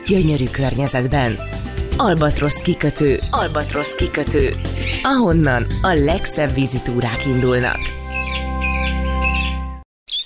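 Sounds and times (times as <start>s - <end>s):
speech: 0.1s - 8.4s
birds chirping: 3.9s - 5.7s, 7.2s - 10.2s.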